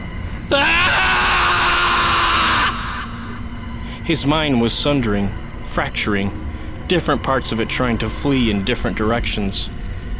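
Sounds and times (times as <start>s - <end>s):
man screaming in terror: 0.5s - 3.5s
speech: 4.1s - 9.8s.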